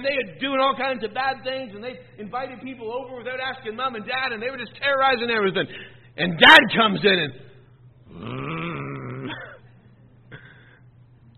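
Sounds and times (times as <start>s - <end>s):
speech: 0.0s - 7.5s
man's voice imitating an angry animal growl: 8.1s - 9.6s.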